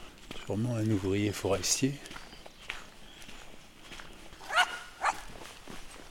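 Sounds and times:
faint footsteps: 0.0s - 6.0s
speech: 0.5s - 2.2s
small dog yapping in a forest: 4.5s - 5.3s.

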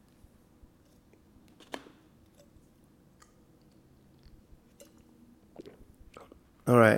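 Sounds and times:
person sipping coffee: 3.2s - 6.5s
soft slurps: 4.7s - 6.4s
mouth and swallowing noises: 5.5s - 6.5s
speech: 6.7s - 6.9s.

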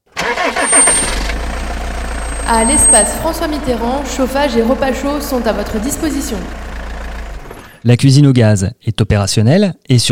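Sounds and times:
engine of a van fitted with loudspeakers driving through town: 0.1s - 7.8s
speech: 2.5s - 6.7s, 7.8s - 10.1s.

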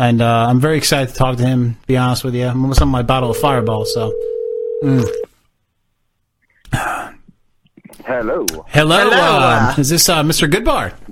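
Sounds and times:
speech: 0.0s - 5.3s, 6.7s - 7.2s, 8.0s - 11.0s
voiced sound: 3.1s - 5.3s
telephone dial tone while a call is placed: 3.3s - 5.3s.

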